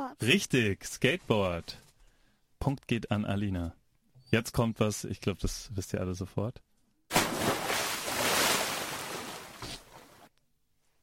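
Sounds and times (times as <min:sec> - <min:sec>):
speech: 0:00.1 - 0:01.8, 0:02.6 - 0:06.7
loud splash of someone jumping into water: 0:07.1 - 0:10.1.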